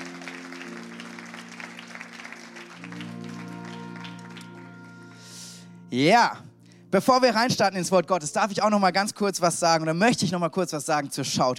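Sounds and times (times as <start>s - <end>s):
audience applauding for the band: 0.0s - 5.3s
sustained musical tone: 0.0s - 8.1s
speech: 5.9s - 11.5s.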